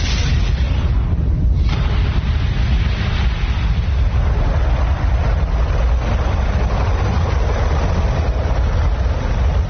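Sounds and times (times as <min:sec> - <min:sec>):
rocket engines roaring at liftoff: 0:00.0 - 0:09.6.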